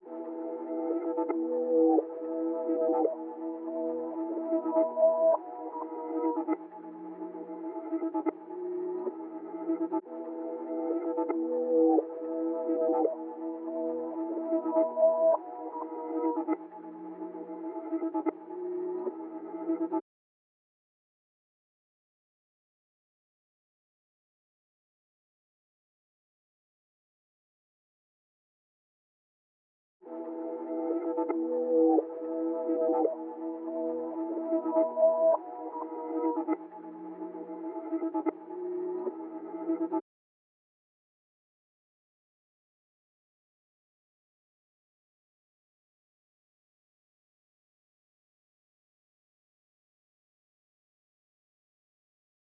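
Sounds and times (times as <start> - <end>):
atmospheric music at 96 BPM in E minor: 0.0 - 20.0, 30.1 - 40.0.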